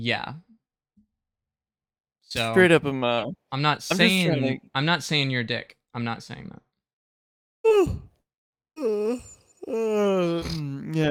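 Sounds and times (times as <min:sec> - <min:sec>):
speech: 0:00.0 - 0:00.5, 0:02.3 - 0:06.7, 0:07.6 - 0:08.1, 0:08.8 - 0:11.0
person yawning: 0:07.7 - 0:08.1, 0:08.8 - 0:11.0.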